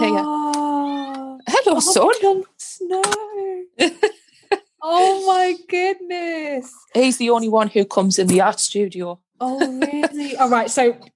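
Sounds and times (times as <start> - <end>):
male pet cat meowing to be let in: 0.0 - 1.4
speech: 1.6 - 4.2, 4.8 - 11.1.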